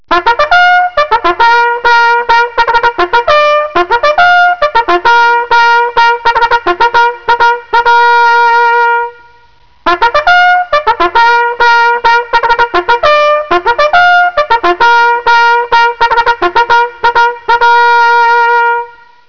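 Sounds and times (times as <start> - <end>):
bugle: 0.1 - 19.1.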